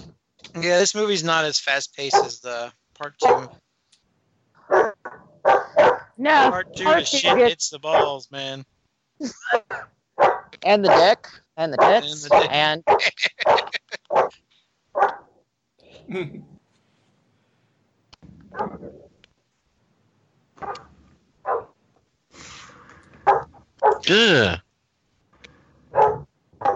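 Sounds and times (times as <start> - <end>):
laughter: 0.6 - 2.6, 6.4 - 8.3, 11.9 - 14.1
speech: 0.6 - 3.6, 6.2 - 13.8, 16.1 - 16.5, 24.0 - 24.6
dog barking: 2.1 - 2.4, 3.1 - 3.5, 4.6 - 8.2, 9.7 - 11.2, 11.8 - 14.3, 15.0 - 15.2, 18.5 - 18.9, 20.6 - 20.9, 21.5 - 21.7, 23.2 - 24.0, 25.9 - 26.7.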